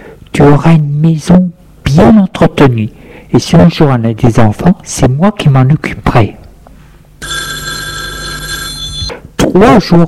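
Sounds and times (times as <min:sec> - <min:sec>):
speech: 0:00.4 - 0:06.4, 0:09.5 - 0:10.0
telephone bell ringing: 0:07.2 - 0:09.2.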